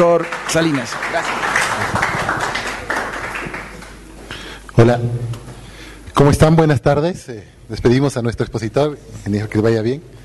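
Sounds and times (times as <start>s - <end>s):
speech: 0.0s - 2.2s, 4.8s - 5.4s, 6.2s - 10.2s
audience applauding with many hands clapping: 0.0s - 4.1s.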